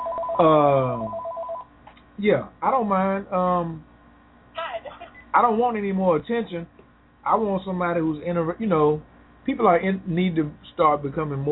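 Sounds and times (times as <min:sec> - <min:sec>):
faint repeating beep pattern: 0:00.0 - 0:01.7
telephone ringing with a sliding electronic tone: 0:00.0 - 0:01.7
speech: 0:00.4 - 0:01.2, 0:02.2 - 0:03.9, 0:05.3 - 0:11.5.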